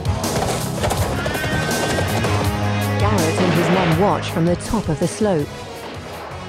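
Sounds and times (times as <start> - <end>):
horse hooves shuffling on flat ground: 0.0 - 3.4
horses neighing as riders remount on flat ground: 0.3 - 2.8
speech: 3.9 - 5.7.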